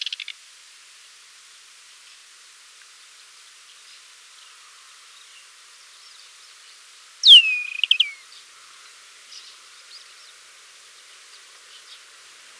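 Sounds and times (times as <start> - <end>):
Desert wheatear sharp whistle sliding steeply down: 7.2 - 8.2
Desert wheatear song: 7.2 - 8.2.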